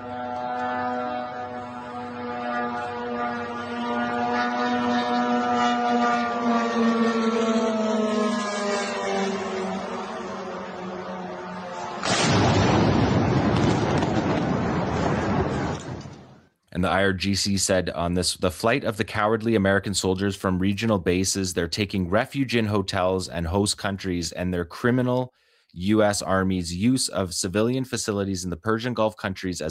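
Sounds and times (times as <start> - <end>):
military drone buzzing engine whine: 0.0 - 16.5
drone explosive impact striking a hotel: 12.0 - 16.4
speech: 17.0 - 29.6.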